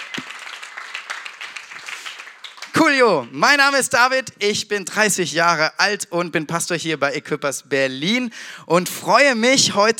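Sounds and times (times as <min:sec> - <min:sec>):
church congregation clapping for teachers and educators: 0:00.0 - 0:03.5
speech: 0:02.8 - 0:09.9.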